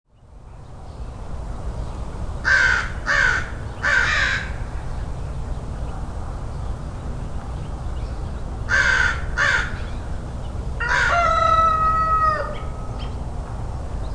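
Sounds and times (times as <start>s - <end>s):
low background rumble: 0.2s - 14.1s
crow giving raspy caws: 2.4s - 4.6s, 8.7s - 9.8s, 10.8s - 12.7s.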